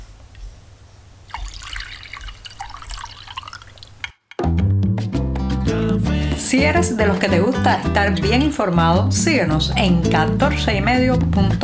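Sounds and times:
coffee pouring into a cup: 1.3s - 4.1s
music: 4.3s - 11.6s
speech: 6.5s - 11.6s.

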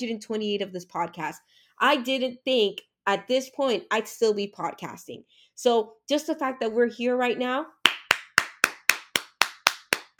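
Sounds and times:
speech: 0.0s - 7.8s
person clapping hands: 7.8s - 10.1s.

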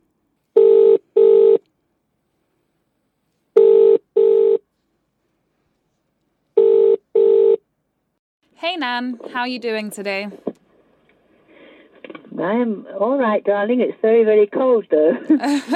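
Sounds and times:
telephone double ringing tone: 0.6s - 1.6s, 3.6s - 4.6s, 6.6s - 7.6s
speech: 8.6s - 10.5s, 12.4s - 15.7s
laughter: 15.2s - 15.7s.

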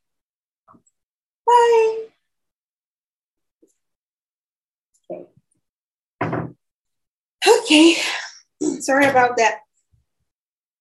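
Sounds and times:
door pushed shut with a clatter, scrape and thud: 6.2s - 6.6s
speech: 7.4s - 9.6s.

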